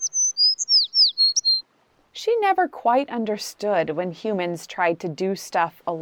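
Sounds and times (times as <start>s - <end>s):
small bird tweeting with high thin chirps and whistles: 0.0s - 1.6s
speech: 2.3s - 6.0s.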